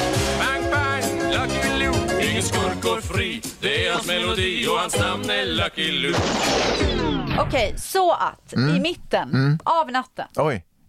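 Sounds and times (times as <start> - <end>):
loud music: 0.0 - 7.2
speech: 3.0 - 10.8
gunshot sound-effect bangs: 6.1 - 7.5.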